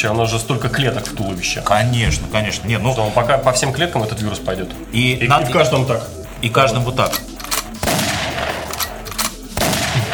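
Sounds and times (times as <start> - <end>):
speech: 0.0 - 7.3
gunfire bursts trailing into battle rumble: 7.0 - 10.1.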